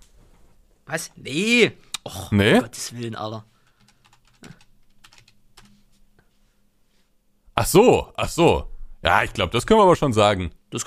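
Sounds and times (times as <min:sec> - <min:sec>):
speech: 0:00.9 - 0:03.5, 0:07.6 - 0:10.8
someone typing a message on a keyboard: 0:03.7 - 0:05.8.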